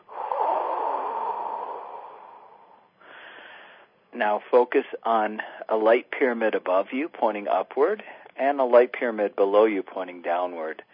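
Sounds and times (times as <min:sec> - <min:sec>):
deep breath released forcefully during a breathing exercise: 0:00.0 - 0:03.9
speech: 0:04.2 - 0:10.9.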